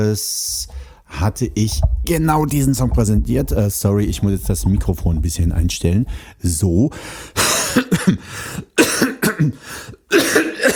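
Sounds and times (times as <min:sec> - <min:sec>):
speech: 0:00.0 - 0:08.7
person coughing harshly: 0:07.4 - 0:10.7.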